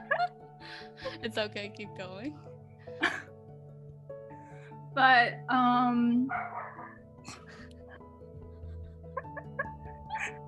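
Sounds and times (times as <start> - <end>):
speech: 1.2 - 3.2, 5.0 - 6.6
dog barking in short sharp yaps: 6.3 - 7.0, 9.3 - 10.4.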